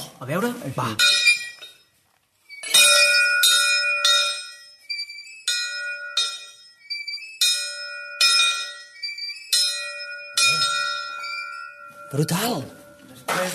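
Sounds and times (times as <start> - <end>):
speech: 0.2 - 1.3, 12.1 - 12.8, 13.4 - 13.5
small chapel bell rung by children: 1.0 - 13.5.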